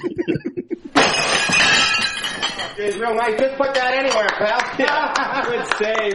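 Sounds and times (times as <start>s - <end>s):
person murmuring: 0.0s - 0.9s
laughter: 0.0s - 1.0s, 4.2s - 6.1s
speech: 0.2s - 0.6s, 2.8s - 6.1s
glass and plates shattering on the floor: 0.9s - 4.5s
glass shards and debris clattering: 1.0s - 4.3s.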